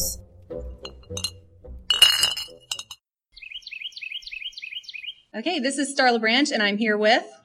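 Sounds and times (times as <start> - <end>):
glass clinking and rattling in a glassblowing studio: 0.8 - 3.0
speech: 5.4 - 7.4.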